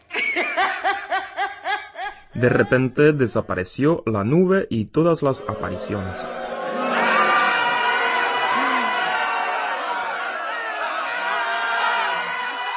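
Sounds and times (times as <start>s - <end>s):
laughter: 0.0s - 3.0s, 5.2s - 12.7s
speech: 2.4s - 6.4s
large crowd shouting in astonishment and horror: 5.4s - 12.7s.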